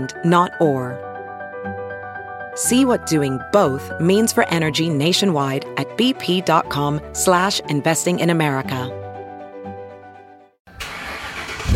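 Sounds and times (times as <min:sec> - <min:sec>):
speech: 0:00.0 - 0:01.1, 0:02.6 - 0:09.0
car engine cranking with a key turn: 0:10.7 - 0:11.7.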